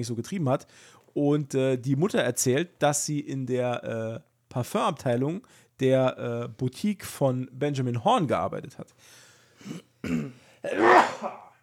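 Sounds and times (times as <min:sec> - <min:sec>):
speech: 0:00.0 - 0:11.4
person sneezing: 0:09.6 - 0:11.6.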